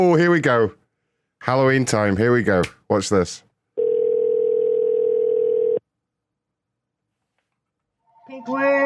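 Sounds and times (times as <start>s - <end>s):
speech: 0.0s - 0.8s, 1.4s - 3.5s, 8.4s - 8.8s
landline telephone dial tone: 3.8s - 5.8s.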